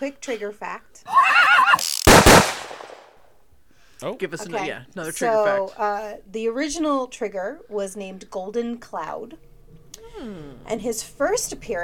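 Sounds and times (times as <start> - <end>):
speech: 0.0 - 2.0, 4.0 - 9.5, 10.1 - 11.8
horse whinnying: 1.1 - 2.0.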